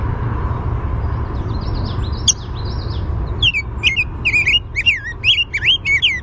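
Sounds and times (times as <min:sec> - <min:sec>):
low background rumble: 0:00.0 - 0:06.2
rose-breasted grosbeak warbled song with whistled notes: 0:01.0 - 0:06.2
rose-breasted grosbeak sharp chink: 0:01.6 - 0:06.2.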